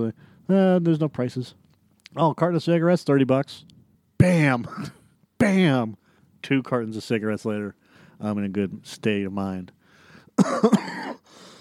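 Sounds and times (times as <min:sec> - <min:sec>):
speech: 0:00.0 - 0:09.8, 0:10.4 - 0:11.0
harsh coughing with a raspy rattling exhale: 0:04.6 - 0:05.0, 0:10.4 - 0:11.3.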